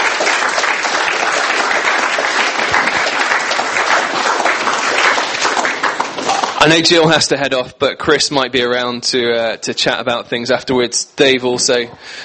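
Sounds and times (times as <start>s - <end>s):
audience applauding in a room: 0.0s - 7.2s
speech: 6.6s - 12.2s.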